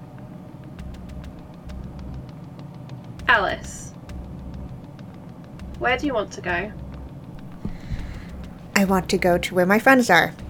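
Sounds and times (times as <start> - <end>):
speech: 3.3 - 3.9, 5.8 - 6.8, 8.8 - 10.4
faint crackling clicks: 7.4 - 9.2
car engine accelerating: 7.4 - 9.6.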